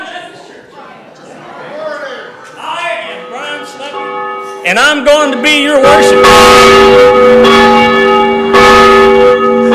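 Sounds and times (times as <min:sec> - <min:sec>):
church bells ringing: 0:03.0 - 0:09.7
speech: 0:04.7 - 0:07.5.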